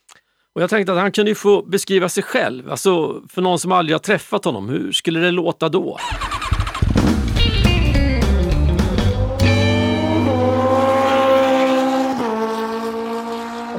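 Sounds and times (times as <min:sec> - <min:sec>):
speech: 0:00.6 - 0:06.3
motorcycle engine revving with stepped shifts: 0:06.0 - 0:13.7.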